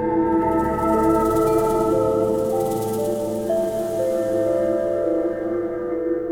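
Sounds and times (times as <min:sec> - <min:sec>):
music loop: 0:00.2 - 0:06.2.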